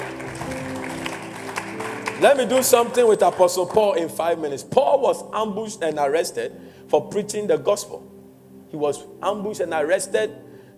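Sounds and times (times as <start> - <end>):
church audience clapping as an offering: 0.0 - 4.0
sustained tones of an organ or keyboard: 0.0 - 10.7
speech: 2.2 - 8.1, 8.7 - 10.4.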